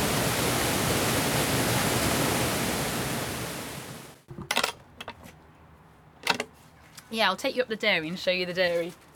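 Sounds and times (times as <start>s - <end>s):
water flowing through a mill building: 0.0s - 4.2s
brief metallic clinks and knocks: 4.3s - 5.3s
speech: 7.1s - 9.0s.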